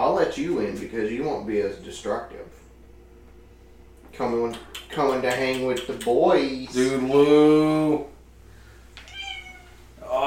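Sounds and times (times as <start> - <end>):
speech: 0.2 - 2.6, 4.1 - 8.1
cat meowing: 9.0 - 9.9.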